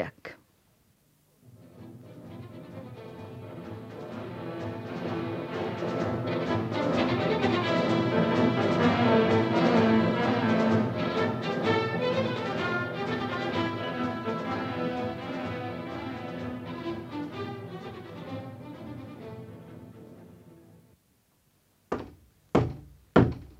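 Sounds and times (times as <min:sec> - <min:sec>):
music: 0:01.4 - 0:21.0
loud hollow knocks on a door: 0:21.9 - 0:23.5.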